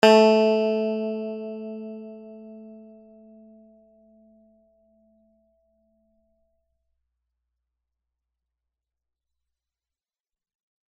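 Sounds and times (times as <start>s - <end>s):
string instrument note A3: 0.0s - 5.3s.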